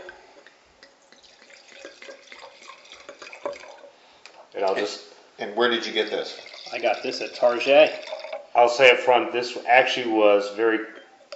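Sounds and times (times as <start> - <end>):
wine pouring steadily into a glass: 1.0 - 4.0, 5.8 - 8.6
speech: 4.6 - 11.0.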